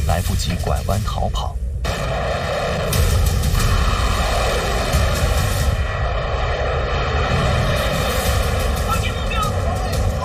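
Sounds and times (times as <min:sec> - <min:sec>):
speech: 0:00.2 - 0:02.3
U-2 high-flying reconnaissance jet flying overhead: 0:03.6 - 0:10.1.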